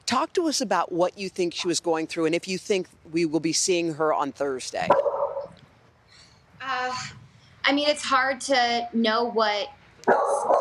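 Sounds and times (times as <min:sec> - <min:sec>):
speech: 0:00.1 - 0:05.1, 0:06.6 - 0:10.5
dog bark: 0:04.9 - 0:05.5, 0:10.1 - 0:10.5.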